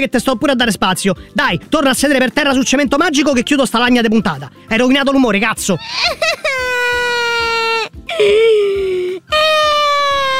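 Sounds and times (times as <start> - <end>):
speech: 0.0 - 6.5, 8.2 - 8.7
person whimpering and crying in high-pitched wailing moans: 5.7 - 10.3.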